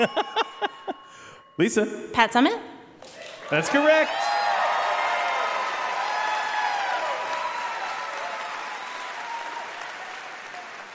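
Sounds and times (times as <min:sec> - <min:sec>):
speech: 0:00.0 - 0:00.2, 0:01.6 - 0:02.7, 0:03.5 - 0:04.4
live audience applause: 0:03.1 - 0:10.9.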